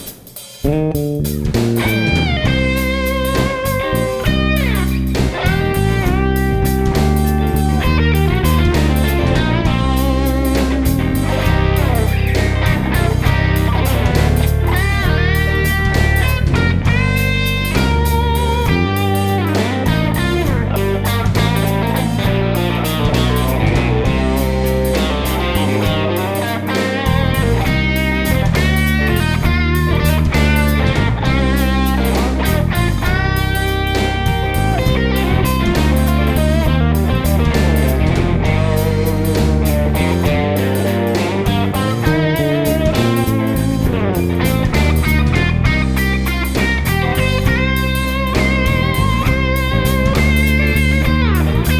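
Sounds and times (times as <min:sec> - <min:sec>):
basswood Roscoe 5995 bass guitar: 0:00.6 - 0:51.7.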